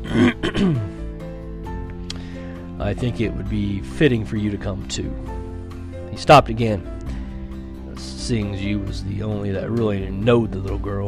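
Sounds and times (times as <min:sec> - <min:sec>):
man clearing his throat: 0:00.0 - 0:01.0
speech: 0:00.2 - 0:00.9, 0:02.8 - 0:05.4, 0:06.2 - 0:07.0, 0:08.3 - 0:11.0.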